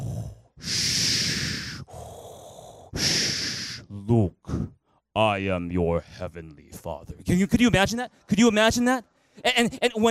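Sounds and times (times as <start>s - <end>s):
voice imitating heavy rasping breathing of a masked villain: 0.0s - 4.9s
speech: 5.2s - 10.0s.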